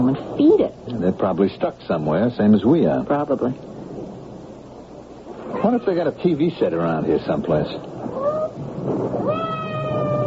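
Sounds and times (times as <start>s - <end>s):
speech: 0.1s - 3.7s, 5.6s - 7.9s
cat meowing: 8.1s - 8.6s, 9.2s - 10.2s.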